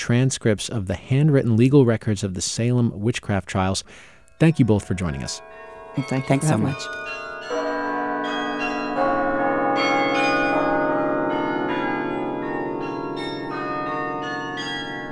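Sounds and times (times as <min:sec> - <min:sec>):
speech: 0:00.0 - 0:07.6
carillon bells ringing from Harkness Tower at Yale University in New Haven, Connecticut: 0:04.0 - 0:15.0.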